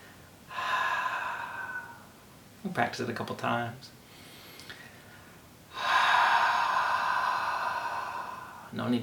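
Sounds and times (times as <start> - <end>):
forceful open-mouthed haaaw exhalation in a breathing practice: 0.5 - 2.1, 5.7 - 8.8
speech: 2.6 - 4.0, 8.8 - 9.0.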